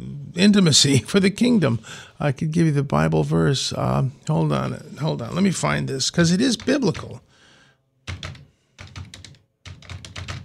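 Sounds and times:
speech: 0.4s - 7.3s
clicking on a computer keyboard: 8.1s - 10.4s.

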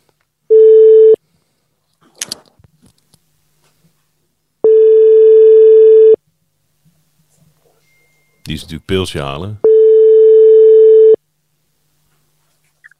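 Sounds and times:
telephone ringback tone while calling someone back: 4.6s - 6.2s, 9.6s - 11.2s
speech: 8.5s - 9.6s.

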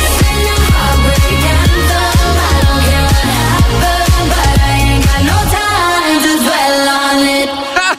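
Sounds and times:
upbeat pop dance track on a morning radio show: 0.0s - 7.9s.

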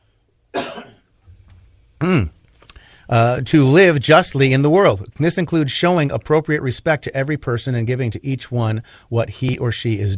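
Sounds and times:
person clearing throat: 0.5s - 1.1s, 2.0s - 2.4s
speech: 3.1s - 10.1s.

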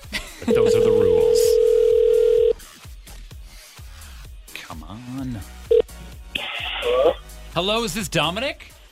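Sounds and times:
speech: 0.4s - 1.1s, 7.6s - 8.7s
steady electronic telephone tone: 0.5s - 2.6s.

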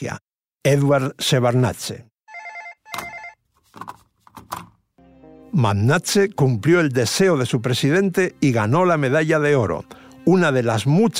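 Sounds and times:
speech: 0.0s - 2.1s, 5.5s - 11.1s
telephone ringing with a bright electronic trill: 2.3s - 3.4s.

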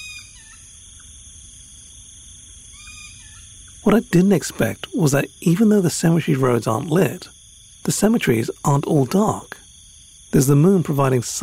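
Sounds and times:
bird giving harsh calls at night: 0.0s - 0.7s, 2.7s - 5.2s
high buzzing drone of insects outdoors at night: 0.0s - 11.4s
speech: 3.8s - 9.6s, 10.3s - 11.4s.

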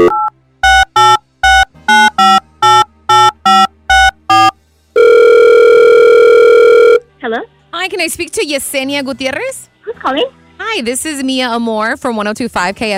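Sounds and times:
telephone keypad beeps dialing a number: 0.0s - 7.0s
speech: 8.0s - 12.9s.

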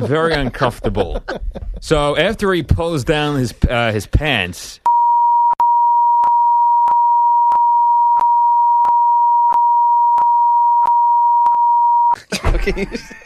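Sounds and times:
laughter: 0.0s - 1.8s, 12.2s - 13.2s
speech: 0.0s - 4.8s, 12.2s - 13.2s
censor bleep tone: 4.9s - 12.2s.

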